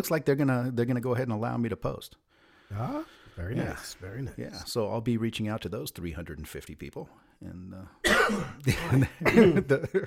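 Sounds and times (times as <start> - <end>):
speech: 0.0 - 10.0
person coughing harshly: 8.0 - 9.7
laughter: 8.6 - 10.0.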